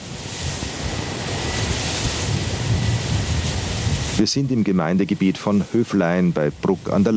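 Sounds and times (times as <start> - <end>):
wind blowing across a wind farm: 0.0 - 7.1
speech: 4.2 - 7.1.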